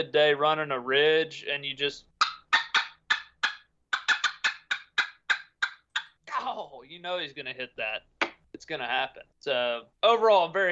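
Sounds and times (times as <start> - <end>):
speech: 0.0 - 2.1, 6.4 - 10.7
turkey hen cutting made on a turkey call: 2.2 - 6.5, 8.2 - 8.5.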